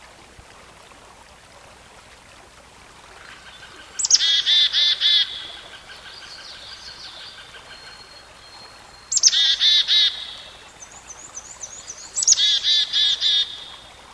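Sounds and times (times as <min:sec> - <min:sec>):
faint background hiss: 0:00.0 - 0:14.1
songbird song with sharp high note and buzzy harmonic notes: 0:03.2 - 0:14.0.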